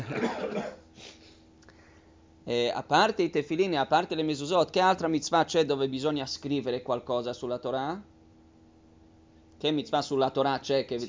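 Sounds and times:
person coughing during a religious study class: 0:00.0 - 0:01.2
speech: 0:00.1 - 0:00.8, 0:02.5 - 0:08.1, 0:09.6 - 0:11.0.

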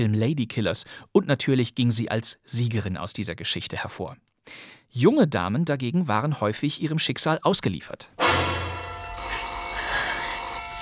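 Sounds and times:
speech: 0:00.0 - 0:08.6
telephone ringing: 0:08.8 - 0:10.8.

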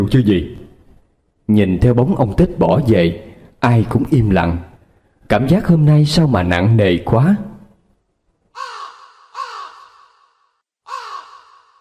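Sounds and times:
speech: 0:00.0 - 0:00.6, 0:01.5 - 0:04.7, 0:05.3 - 0:07.5
crows cawing behind a house: 0:08.6 - 0:11.7.

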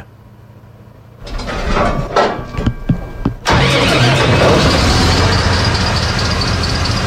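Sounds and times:
clattering knocks of a diesel engine starting: 0:01.2 - 0:03.7
water pump driven by a V-configuration diesel engine running: 0:03.4 - 0:07.0.

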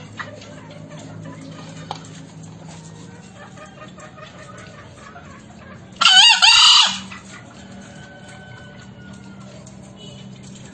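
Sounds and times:
green junglefowl crowing with harsh two-part call: 0:06.0 - 0:09.8.

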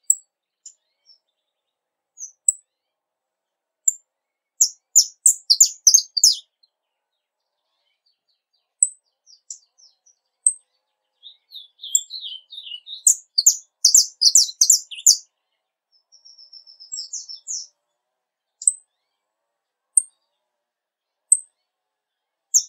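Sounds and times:
Portuguese domestic canary singing: 0:04.6 - 0:06.5, 0:09.2 - 0:15.2, 0:15.9 - 0:17.7.

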